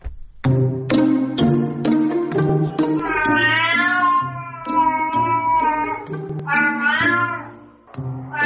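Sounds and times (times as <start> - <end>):
steady musical background: 0.2 - 8.4
cat meowing: 3.0 - 7.6, 8.2 - 8.4.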